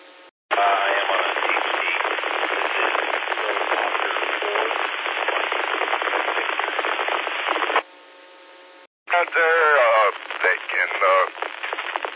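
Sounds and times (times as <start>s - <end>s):
warbling garbled voice radio transmission: 0.5s - 6.5s, 9.1s - 12.1s
loud band-limited radio static: 0.5s - 7.8s, 9.1s - 12.1s.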